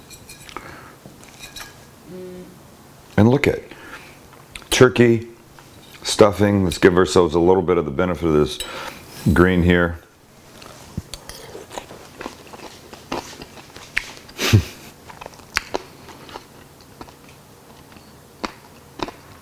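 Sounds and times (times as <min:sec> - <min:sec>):
speech: 0:02.1 - 0:02.6, 0:03.2 - 0:03.7, 0:04.8 - 0:05.3, 0:06.0 - 0:10.0
biting and chewing crunchy bacon sandwich: 0:10.6 - 0:19.3.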